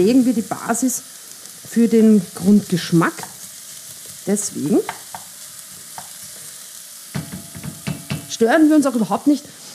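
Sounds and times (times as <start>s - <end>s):
speech: 0.0s - 3.3s, 4.2s - 5.0s, 8.4s - 9.6s
vegetables sizzling in a hot pan: 0.0s - 9.7s.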